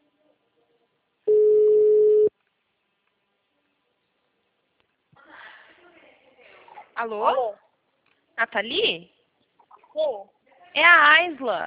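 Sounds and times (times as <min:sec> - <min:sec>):
ringback tone of an outgoing telephone call: 0:01.3 - 0:02.3
speech: 0:07.0 - 0:07.6, 0:08.4 - 0:09.2, 0:10.0 - 0:11.6.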